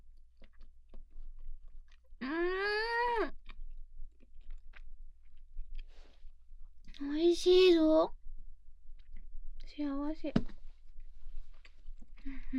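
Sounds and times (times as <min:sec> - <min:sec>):
chewing the last bite of food: 0:00.0 - 0:02.4, 0:03.2 - 0:07.0, 0:08.2 - 0:09.8, 0:10.7 - 0:12.5
speech: 0:07.4 - 0:08.2, 0:10.1 - 0:10.6.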